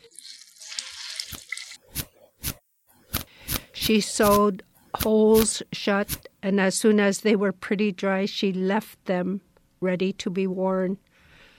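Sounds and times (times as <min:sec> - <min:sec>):
water wrung out of wet boots, trickling and splashing: 0:00.0 - 0:01.8
speech: 0:03.9 - 0:11.1.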